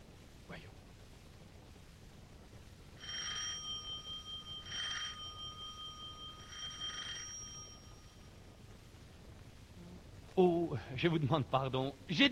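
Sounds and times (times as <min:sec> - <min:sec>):
low hum: 0:00.0 - 0:12.3
electric doorbell ringing: 0:03.0 - 0:08.4
speech: 0:10.4 - 0:12.3.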